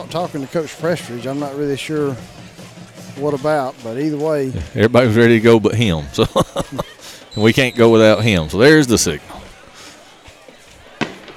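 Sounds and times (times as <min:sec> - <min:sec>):
speech: 0:00.0 - 0:02.4, 0:03.2 - 0:06.8, 0:07.4 - 0:09.4
crowd noise from the stands at a football game: 0:00.0 - 0:11.3
laughter: 0:04.4 - 0:11.3
faint firework pops at a football game: 0:11.0 - 0:11.3.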